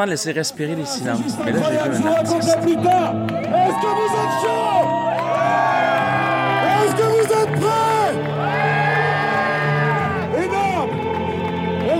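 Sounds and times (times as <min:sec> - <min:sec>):
speech: 0:00.0 - 0:04.8
large crowd cheering and whooping: 0:02.8 - 0:11.8.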